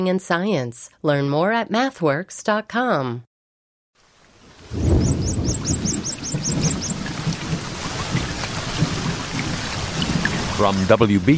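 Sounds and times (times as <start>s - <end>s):
speech: 0.0s - 3.3s, 5.4s - 6.7s, 10.6s - 11.3s
steady full rainfall: 4.0s - 11.3s
low rumble of thunder: 4.5s - 10.9s
chirping bird notes: 4.7s - 7.6s.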